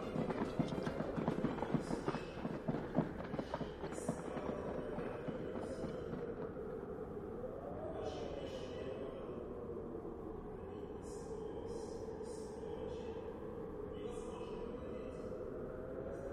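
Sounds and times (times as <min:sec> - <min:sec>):
knight's retinue horse striking its hooves: 0:00.0 - 0:06.5
steady rumble: 0:00.0 - 0:16.3.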